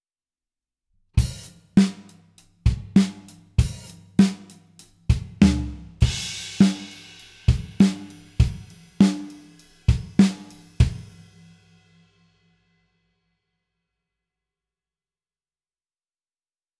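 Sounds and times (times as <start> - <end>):
full drum kit: 1.2 - 11.6.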